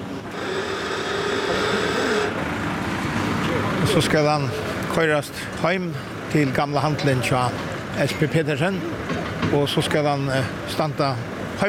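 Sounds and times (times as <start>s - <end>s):
harbour crane motor droning while hoisting an old deck boat: 0.0s - 5.0s
speech: 3.9s - 11.6s.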